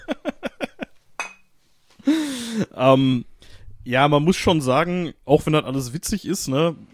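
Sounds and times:
glasses clinking during a toast: 1.2 - 1.5
speech: 2.8 - 6.9.

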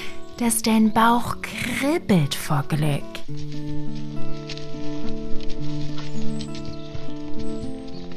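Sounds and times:
sustained gentle musical tones: 0.0 - 8.1
speech: 0.4 - 4.1
hoofbeats of horses ridden through a forest at a walking pace: 2.9 - 8.1.

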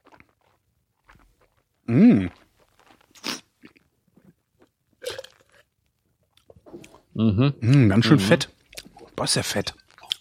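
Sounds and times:
mouth and swallowing sounds: 0.0 - 10.1
speech: 1.9 - 2.4, 7.2 - 8.6, 9.2 - 9.8
Pinot wine being slurped during a tasting: 1.9 - 3.5, 5.0 - 5.7.

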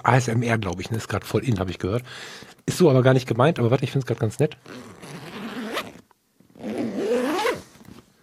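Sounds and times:
speech: 0.0 - 5.2
zipper on an Italian leather bag being pulled: 4.6 - 8.0.

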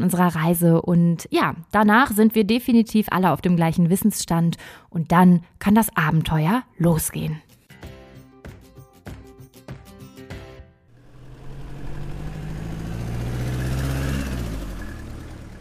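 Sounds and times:
speech: 0.0 - 7.5
car engine starting and running: 10.9 - 15.5.

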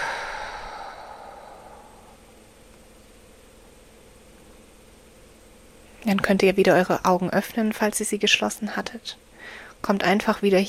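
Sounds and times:
deep breath out through the mouth during a guided breathing exercise: 0.0 - 2.4
speech: 6.1 - 10.6.

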